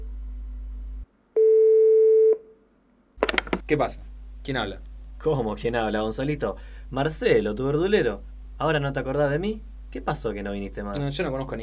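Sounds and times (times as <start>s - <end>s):
telephone call signal on a line to a house: 1.4s - 2.4s
speech: 3.7s - 11.6s.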